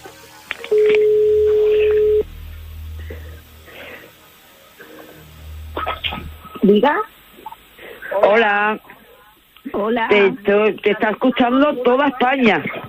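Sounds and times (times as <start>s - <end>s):
low hum: 0.0s - 11.1s
faint short tones of a number being dialled: 0.7s - 2.2s
speech: 6.7s - 7.2s, 8.2s - 8.9s, 9.8s - 12.8s.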